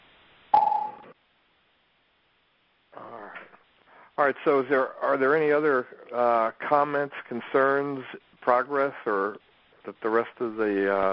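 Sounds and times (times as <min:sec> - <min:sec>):
conference call join beep with a sharp click: 0:00.6 - 0:01.2
speech: 0:04.2 - 0:11.1.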